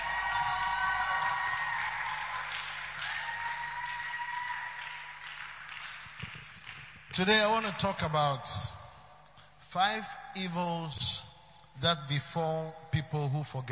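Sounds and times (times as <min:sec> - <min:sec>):
large crowd cheering with whoops and shouts: 0:00.0 - 0:05.2
large crowd clapping: 0:00.0 - 0:07.9
speech: 0:07.2 - 0:08.8, 0:09.7 - 0:11.2, 0:11.8 - 0:13.7.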